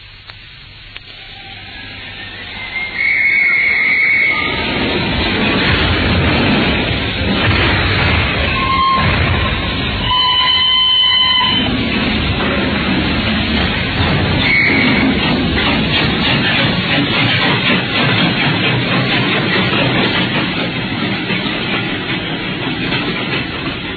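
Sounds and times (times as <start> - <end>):
train pulling away from a station rumbling and clattering: 0.0 - 23.9
sharp train whistle blasts: 1.1 - 4.7, 8.5 - 11.7, 14.4 - 15.0.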